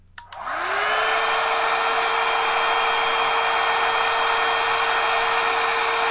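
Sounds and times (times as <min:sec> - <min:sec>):
blow dryer switch click: 0:00.2 - 0:00.5
blow dryer running at full speed: 0:00.2 - 0:06.0.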